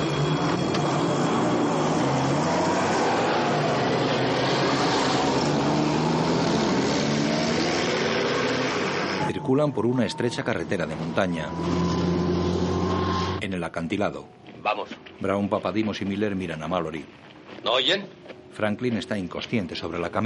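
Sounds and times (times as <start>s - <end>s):
two military trucks driving off: 0.0s - 13.4s
speech: 9.6s - 12.2s, 13.4s - 20.2s.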